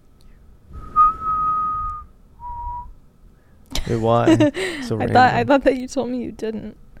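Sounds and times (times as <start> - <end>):
person whistling a sustained note: 0.8 - 3.0
laughter: 3.7 - 5.2
speech: 3.9 - 6.8.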